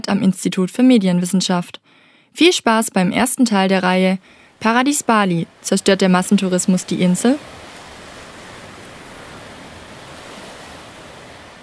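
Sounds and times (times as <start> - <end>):
speech: 0.1 - 7.6
ocean surf breaking onto a beach: 3.2 - 11.6.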